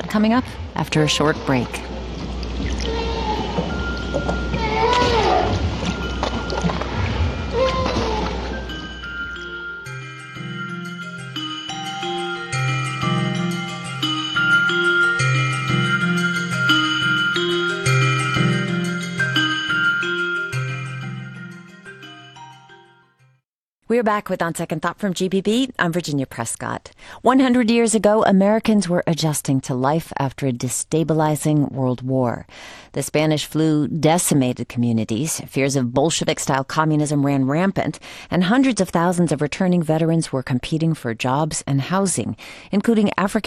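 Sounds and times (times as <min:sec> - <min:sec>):
gentle melodic music with plucked bass notes: 0:00.0 - 0:20.2
speech: 0:00.1 - 0:01.9, 0:24.0 - 0:43.4
right whale calls underwater: 0:01.1 - 0:09.4.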